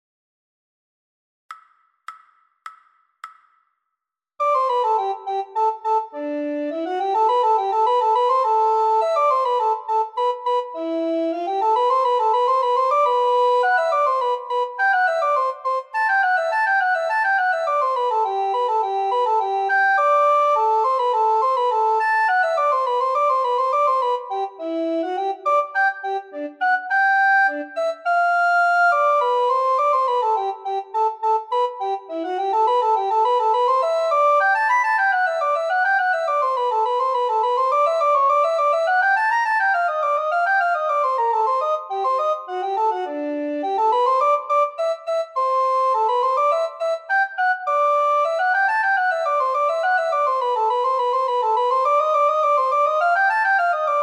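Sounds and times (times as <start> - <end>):
descant recorder playing: 4.4 - 54.0.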